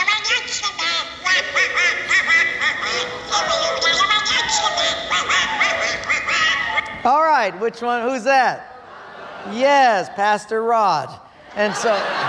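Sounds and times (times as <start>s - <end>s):
raspy garbled cartoon duck voice quacking: 0.0s - 7.0s
speech: 7.0s - 8.7s, 9.4s - 12.2s
laughter: 8.6s - 10.4s, 11.4s - 12.2s.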